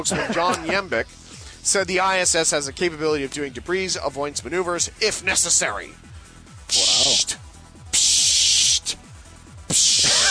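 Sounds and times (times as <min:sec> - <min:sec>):
laughter: 0:00.0 - 0:01.0, 0:10.0 - 0:10.2
speech: 0:00.0 - 0:06.1, 0:06.7 - 0:07.0
aerosol spray can hissing: 0:06.7 - 0:07.4, 0:08.0 - 0:08.9, 0:09.7 - 0:10.2.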